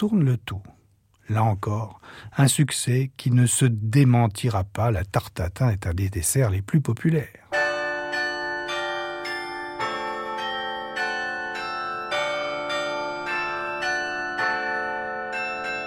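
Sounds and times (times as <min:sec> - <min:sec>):
speech: 0:00.0 - 0:07.4
carillon bells of Flemish towns ringing: 0:07.5 - 0:15.8.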